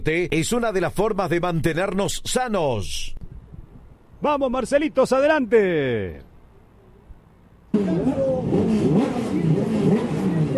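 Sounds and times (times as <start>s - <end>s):
speech: 0.0s - 3.2s, 4.2s - 6.3s, 7.7s - 8.8s
racing car engines revving: 7.7s - 10.5s.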